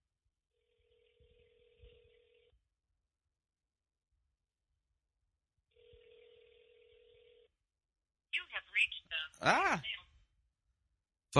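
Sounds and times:
telephone ringing through a speakerphone: 0:00.6 - 0:02.6, 0:05.7 - 0:07.5
speech: 0:08.8 - 0:10.0.

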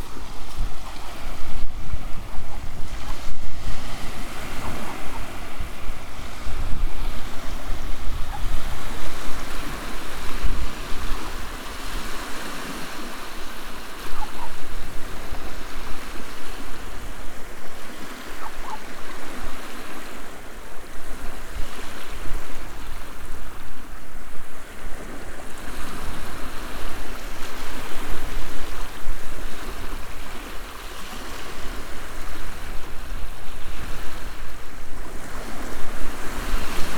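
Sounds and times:
waves on a beach: 0:00.0 - 0:36.9
wind on a beach: 0:00.0 - 0:36.9.

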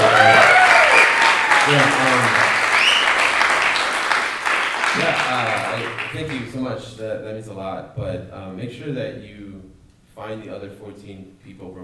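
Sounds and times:
voices and cheers: 0:00.0 - 0:03.3
crowd applauding: 0:00.0 - 0:06.6
speech: 0:06.8 - 0:11.8.

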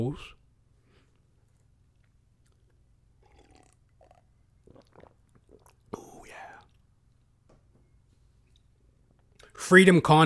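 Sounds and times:
speech: 0:00.0 - 0:00.4, 0:09.6 - 0:10.2
quiet breathing: 0:00.7 - 0:01.5, 0:05.9 - 0:06.8
person sipping water: 0:01.0 - 0:07.3
person gulping water: 0:01.4 - 0:07.3
soft wet mouth noises: 0:01.4 - 0:07.3
person slurping water: 0:02.5 - 0:06.8.

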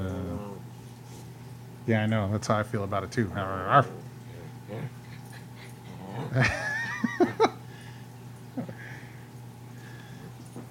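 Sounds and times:
dog whimpering and growling playfully: 0:00.0 - 0:00.7, 0:03.8 - 0:06.5
steady low hum: 0:00.0 - 0:10.6
speech: 0:01.9 - 0:04.1, 0:04.7 - 0:05.0, 0:06.3 - 0:06.6.

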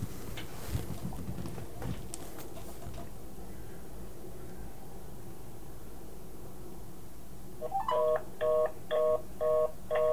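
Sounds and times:
rumbling static: 0:00.0 - 0:07.6
dual-tone telephone keypad tones: 0:07.7 - 0:10.1.

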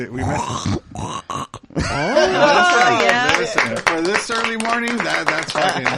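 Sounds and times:
person imitating pig grunts: 0:00.0 - 0:02.3
speech: 0:00.0 - 0:03.1, 0:04.0 - 0:05.9
person imitating a pig squeal: 0:00.1 - 0:01.8
laughter: 0:01.8 - 0:05.9.

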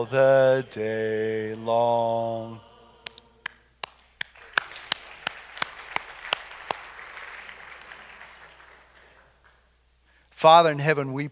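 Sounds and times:
speech: 0:00.2 - 0:02.5, 0:10.4 - 0:11.3
steady rhythmic sharp claps: 0:03.0 - 0:09.8
audience applauding after a hymn: 0:03.8 - 0:09.7.

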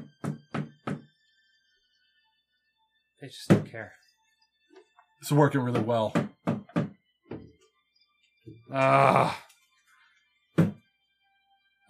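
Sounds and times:
knocking on wooden chair bar: 0:00.0 - 0:01.0, 0:05.7 - 0:07.5
speech: 0:03.2 - 0:04.0, 0:05.2 - 0:06.3, 0:08.7 - 0:09.4.

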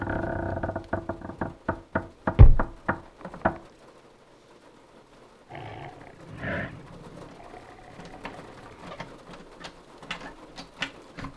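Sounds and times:
something heavy rattling and thumping at a door: 0:01.1 - 0:03.7
scraping and shuffling noise: 0:05.5 - 0:11.3.

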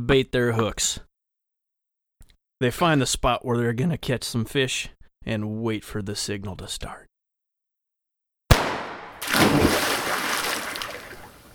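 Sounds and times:
speech: 0:00.0 - 0:01.1, 0:02.6 - 0:07.1
person jumping into the Mississippi River while fishing: 0:08.5 - 0:11.5
river water churning and sloshing: 0:09.2 - 0:11.5.

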